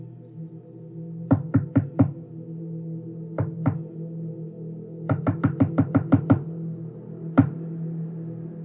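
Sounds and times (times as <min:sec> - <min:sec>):
low steady hum: 0:00.0 - 0:08.6
sharp knocking on a closed bedroom window: 0:01.3 - 0:02.2, 0:05.1 - 0:06.4.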